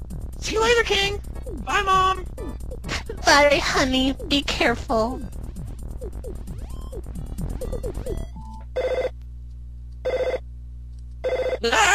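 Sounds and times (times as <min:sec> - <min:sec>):
speech: 0:00.4 - 0:05.4, 0:11.6 - 0:11.9
telephone ringing: 0:08.7 - 0:09.2, 0:10.0 - 0:10.4, 0:11.2 - 0:11.6.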